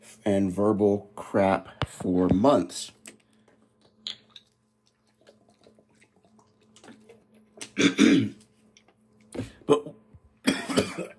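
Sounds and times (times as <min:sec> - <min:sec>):
speech: 0:00.2 - 0:03.0, 0:07.8 - 0:08.4, 0:09.4 - 0:10.0
throat clearing: 0:07.7 - 0:08.4, 0:09.4 - 0:11.1.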